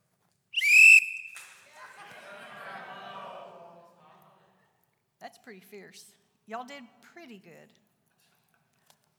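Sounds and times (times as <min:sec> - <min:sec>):
loud shrill whistle blast: 0:00.6 - 0:01.4
light laughter of a group of people: 0:01.7 - 0:04.3
group of people murmuring and chatting: 0:01.7 - 0:04.5
speech: 0:05.4 - 0:07.8.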